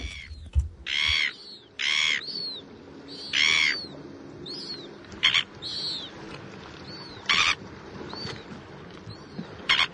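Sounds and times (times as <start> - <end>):
red-billed gulls squawking: 0.0 - 6.2, 6.8 - 8.5, 9.2 - 9.9
other birds calling: 0.0 - 9.9.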